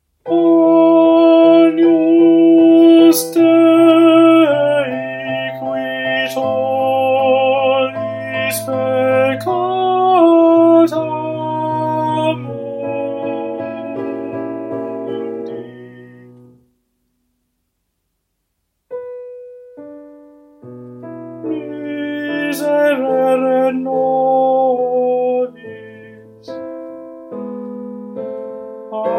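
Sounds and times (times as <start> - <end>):
tenor singing: 0.2 - 16.6, 21.4 - 26.8, 28.9 - 29.1.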